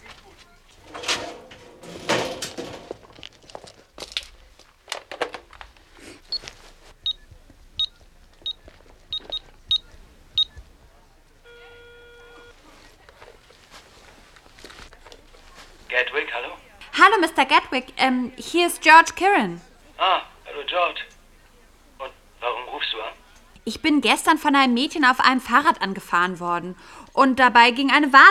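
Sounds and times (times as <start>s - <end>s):
shuffling footsteps entering a phone booth near a hair salon: 0.0s - 17.2s
phone booth door clattering open: 0.8s - 3.3s, 4.9s - 5.7s
crisp push-button telephone dialing beeps: 6.3s - 10.8s, 11.5s - 12.6s
steady electronic telephone ringing tone: 11.4s - 12.6s
speech: 17.2s - 20.2s, 23.8s - 28.2s.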